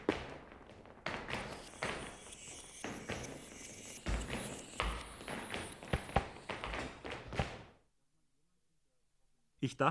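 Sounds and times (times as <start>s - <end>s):
rhythmic footsteps tapping and thudding: 0.0s - 7.9s.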